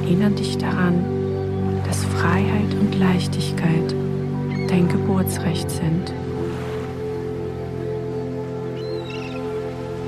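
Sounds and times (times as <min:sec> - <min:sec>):
steady wash of sea: 0:00.0 - 0:10.0
speech: 0:00.1 - 0:01.2, 0:01.9 - 0:04.0, 0:04.7 - 0:06.2
seagull cries over the sea: 0:08.8 - 0:10.0.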